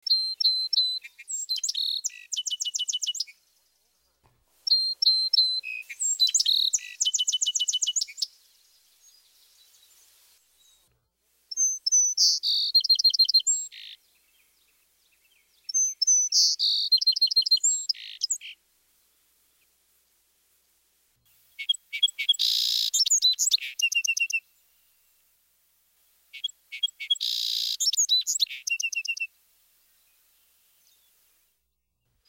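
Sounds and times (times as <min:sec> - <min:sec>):
song sparrow singing: 0:00.0 - 0:18.6, 0:21.3 - 0:25.1, 0:26.3 - 0:29.3.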